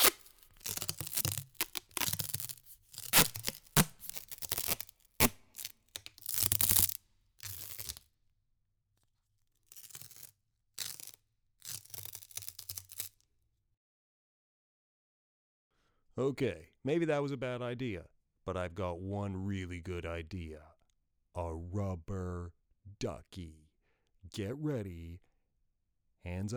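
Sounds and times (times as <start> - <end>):
duct tape being torn off the roll: 0.0 - 8.0, 9.7 - 13.2
speech: 16.2 - 20.7, 21.4 - 23.6, 24.3 - 25.3, 26.2 - 26.5.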